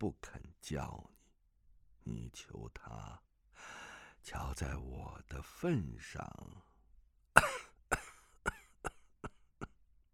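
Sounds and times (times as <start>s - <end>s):
speech: 0.0s - 1.1s, 2.1s - 6.7s
harsh coughing out of breath: 7.4s - 9.8s.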